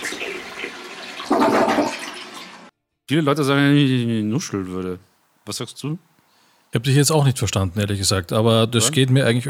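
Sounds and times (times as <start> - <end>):
toilet flushing: 0.0 - 2.7
speech: 3.1 - 6.1, 6.7 - 9.4.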